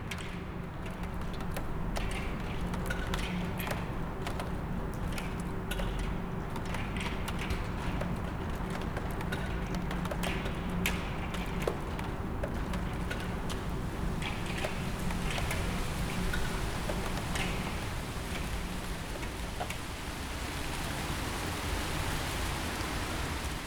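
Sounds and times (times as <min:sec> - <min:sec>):
steady rain on waterlogged tarmac city streets: 0:00.1 - 0:23.6.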